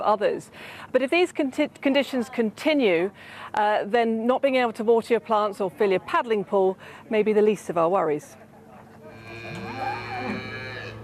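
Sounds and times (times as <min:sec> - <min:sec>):
speech: 0:00.0 - 0:08.4
steady hum: 0:00.0 - 0:11.0
cattle mooing on a farm during a drought: 0:09.1 - 0:11.0.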